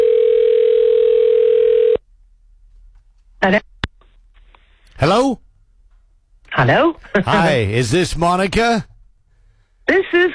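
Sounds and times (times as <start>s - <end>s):
steady telephone tone: 0.0s - 2.0s
speech: 3.4s - 3.6s, 5.0s - 5.4s, 6.6s - 8.9s, 9.9s - 10.3s.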